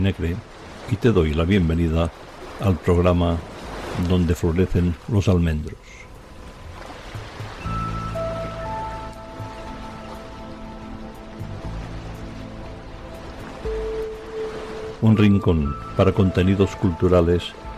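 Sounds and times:
speech: 0.0 - 6.0, 15.0 - 17.7
sea waves washing onto a shore: 0.0 - 17.7
soft sustained musical tones: 5.2 - 17.7.

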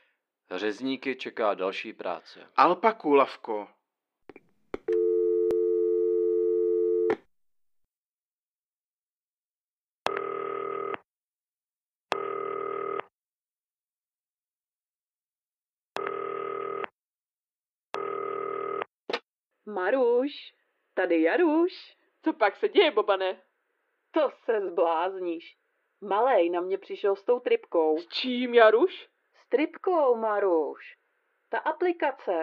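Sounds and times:
speech: 0.5 - 3.8, 19.8 - 23.5, 24.1 - 32.4
telephone dial tone while placing a call: 4.8 - 7.2, 10.1 - 11.0, 12.1 - 13.1, 16.0 - 16.9, 18.0 - 18.9.

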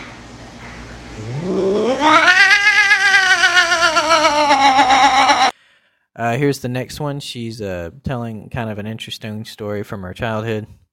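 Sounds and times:
speech: 1.2 - 1.6, 6.3 - 10.8
cat making unhappy vocal noises: 1.2 - 5.5.

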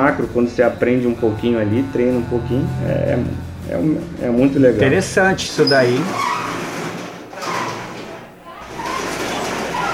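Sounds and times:
speech: 0.1 - 6.4
bar's metal roll-up shutter doors being raised: 5.5 - 9.9.

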